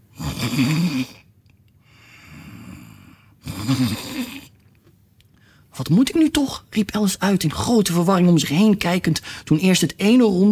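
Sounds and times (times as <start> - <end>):
two people snoring loudly in deep sleep: 0.1 - 1.2, 2.3 - 4.5
speech: 0.5 - 1.2, 5.9 - 10.5.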